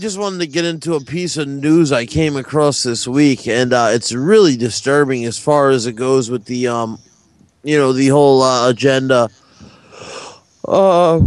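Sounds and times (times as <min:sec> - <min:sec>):
speech: 0:00.0 - 0:11.2
person yawning: 0:09.6 - 0:10.4.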